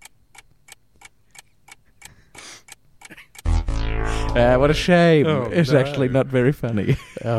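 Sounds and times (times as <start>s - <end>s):
clock ticking: 0.0s - 3.6s
loud tonal sound: 3.5s - 5.2s
speech: 4.4s - 7.3s.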